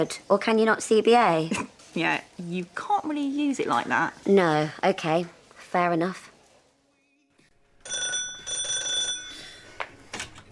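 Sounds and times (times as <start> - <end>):
speech: 0.0 - 6.3
electric doorbell ringing: 7.8 - 9.6.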